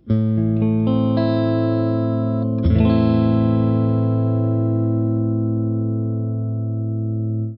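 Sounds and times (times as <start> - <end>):
guitar playing open A minor chords: 0.0 - 7.5.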